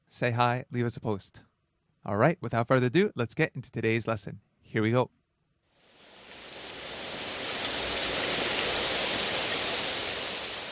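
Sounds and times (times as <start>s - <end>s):
speech: 0.1s - 5.2s
steady rain falling during the rainy season: 5.8s - 10.6s.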